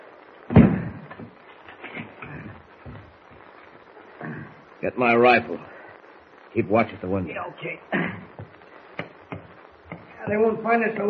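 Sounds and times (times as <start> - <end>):
heavy door of a shack in the woods slamming shut: 0.5 - 1.0
speech: 4.8 - 5.7, 6.6 - 8.3, 10.3 - 11.0.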